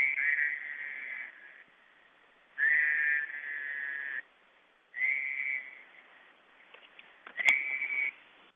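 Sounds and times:
toad breeding call trilling over a cell phone line: 0.0s - 1.7s, 2.6s - 4.2s, 5.0s - 5.9s, 7.3s - 8.2s.

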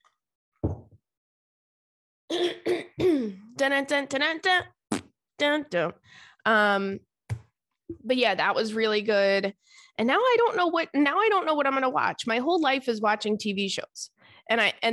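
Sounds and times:
person clearing throat with something caught in the throat: 2.3s - 3.4s
person coughing harshly: 2.3s - 3.4s
speech: 2.3s - 4.8s, 5.4s - 7.1s, 8.0s - 14.9s.

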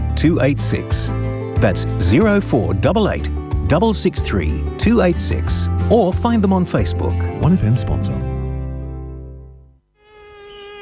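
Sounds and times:
speech: 0.2s - 8.3s
mosquito buzzing: 9.9s - 10.8s.

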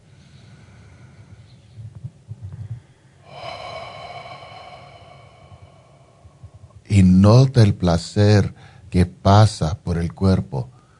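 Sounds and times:
slow deep breathing during a breathing exercise: 0.0s - 1.8s, 2.5s - 6.9s
speech: 7.0s - 10.7s.

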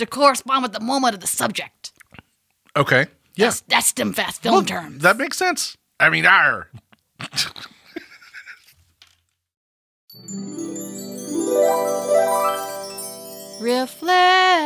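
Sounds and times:
speech: 0.0s - 1.9s, 2.8s - 7.6s, 13.6s - 14.6s
wind chimes ringing with sustained metallic tones: 10.1s - 14.6s.

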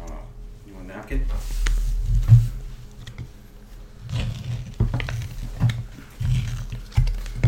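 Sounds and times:
speech: 1.1s - 1.5s
foil lid being peeled back from a hot steamed sticky toffee pudding: 4.1s - 7.4s.

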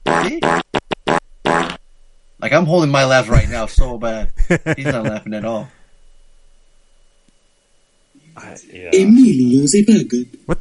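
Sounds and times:
loud buzzing fart sound effect: 0.0s - 1.8s
speech: 0.2s - 0.6s, 2.5s - 5.8s, 8.4s - 10.4s
laughter: 4.4s - 5.6s.

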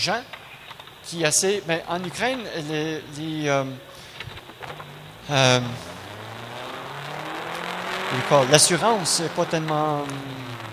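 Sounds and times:
speech: 0.0s - 0.4s, 1.0s - 4.0s, 4.7s - 5.9s, 8.1s - 10.6s
car engine droning heard from inside the vehicle: 2.2s - 10.7s.

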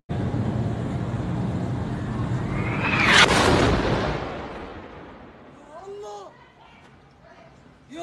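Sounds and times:
steady roar: 0.2s - 6.4s
rising whoosh: 1.1s - 5.8s
loud booming explosion at a hospital: 2.1s - 5.7s.

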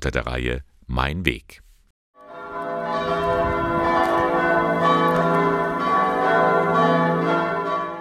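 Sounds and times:
speech: 0.0s - 1.6s
full peal of minster church bells ringing: 2.2s - 7.9s.

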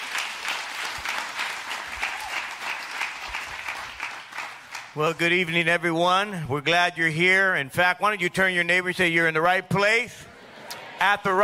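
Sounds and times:
church audience clapping: 0.0s - 5.3s
speech: 5.0s - 10.3s, 11.0s - 11.4s.

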